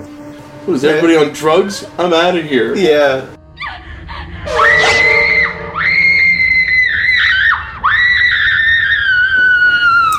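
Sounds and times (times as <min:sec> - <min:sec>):
speech: 0:00.7 - 0:03.4
woman screaming: 0:04.5 - 0:10.1.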